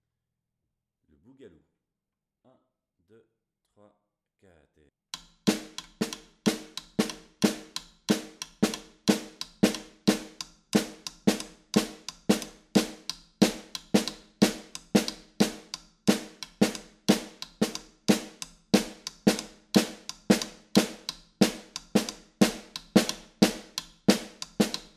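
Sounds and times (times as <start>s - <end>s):
boogaloo and batucada snare drum groove: 5.2s - 24.9s.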